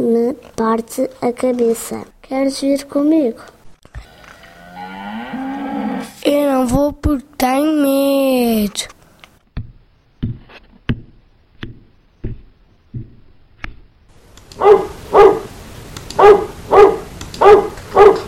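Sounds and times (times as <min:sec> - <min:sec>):
speech: 0:00.1 - 0:04.1, 0:06.2 - 0:09.0, 0:14.6 - 0:15.2
soft low thuds: 0:09.5 - 0:14.0
dog barking: 0:14.6 - 0:15.5, 0:16.2 - 0:18.2.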